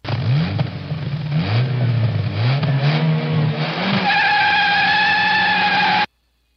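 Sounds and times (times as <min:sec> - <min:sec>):
car engine revving hard: 0:00.0 - 0:06.1
car tires squealing and burning out: 0:02.4 - 0:06.1.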